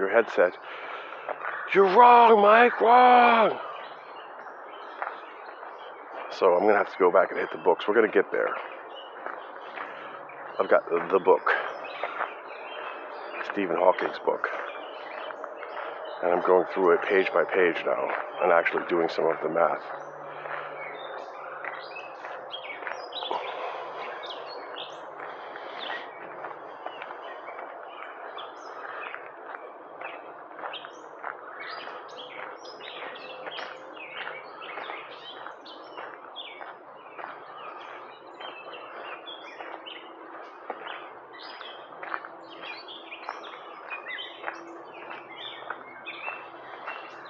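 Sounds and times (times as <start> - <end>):
speech: 0.0 - 3.7, 6.4 - 8.8, 10.6 - 11.6, 13.6 - 14.6, 16.2 - 20.0
chorus of birds chirping and singing: 0.0 - 47.2.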